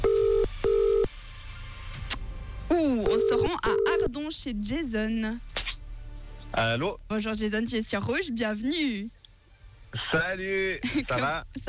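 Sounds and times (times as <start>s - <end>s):
quiet telephone line hiss: 0.0s - 1.1s
telephone ringing tone beeps as an outgoing call is placed: 0.0s - 1.1s, 3.1s - 4.1s
speech: 4.1s - 5.5s, 6.5s - 9.2s, 9.9s - 11.6s.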